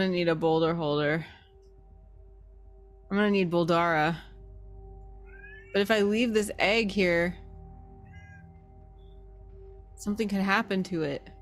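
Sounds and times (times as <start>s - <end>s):
speech: 0.0s - 1.4s, 3.1s - 4.3s, 5.7s - 7.4s, 10.0s - 11.3s
steady low hum: 0.0s - 11.4s
domestic cat meowing loudly: 5.3s - 5.8s, 8.0s - 8.6s.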